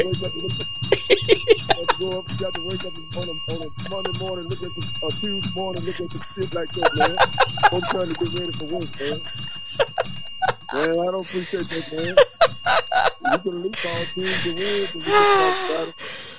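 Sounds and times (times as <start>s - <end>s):
man cussing rant: 0.0s - 0.7s, 1.4s - 9.3s, 13.3s - 16.0s
laughter: 0.0s - 16.0s
bell ringing to bleep out cursing: 0.0s - 16.3s
speech: 0.0s - 16.3s.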